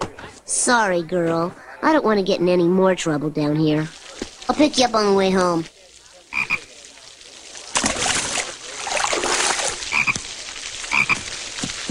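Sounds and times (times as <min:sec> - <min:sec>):
speech: 0:00.5 - 0:05.8
steady rushing splashy noise: 0:03.9 - 0:11.8
frog croaking in short rattling bursts: 0:06.3 - 0:06.8, 0:09.8 - 0:10.3, 0:10.9 - 0:11.3.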